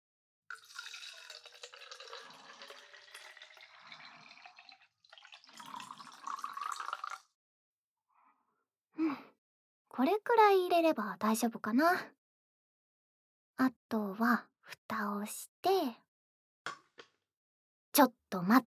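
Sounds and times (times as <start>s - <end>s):
hot water poured from a kettle into a teapot with tea leaves: 0.5s - 7.3s
speech: 10.0s - 12.2s, 13.6s - 16.0s, 18.0s - 18.7s.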